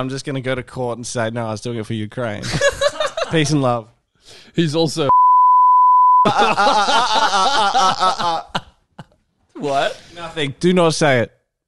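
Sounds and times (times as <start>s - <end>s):
speech: 0.0s - 5.1s, 6.3s - 8.6s, 9.6s - 11.4s
censor beep over speech: 5.1s - 6.3s
loud chuckling and laughter: 6.2s - 9.2s.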